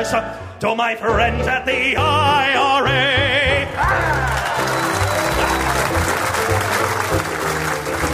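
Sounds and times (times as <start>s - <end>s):
speech: 0.1s - 4.3s
live audience hissing at a pun: 4.1s - 8.1s.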